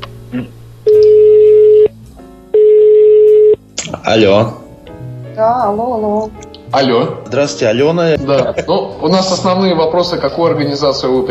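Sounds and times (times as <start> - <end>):
speech: 0.3 - 0.6, 4.0 - 4.6, 5.4 - 11.3
telephone call tones while dialing: 0.9 - 1.9, 2.5 - 3.6.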